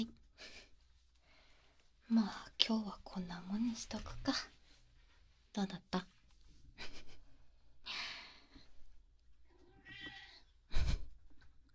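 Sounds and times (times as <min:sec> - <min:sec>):
speech: 0:02.1 - 0:04.6, 0:05.6 - 0:06.2, 0:06.8 - 0:07.1
cat meowing: 0:09.6 - 0:10.5.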